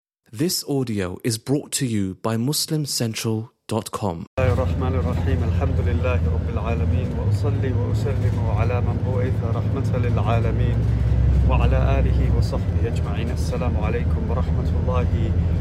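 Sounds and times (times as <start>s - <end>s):
speech: 0.3s - 15.5s
road rumble inside a moving bus: 4.4s - 15.5s
steady low engine drone of a moving bus: 4.4s - 15.5s.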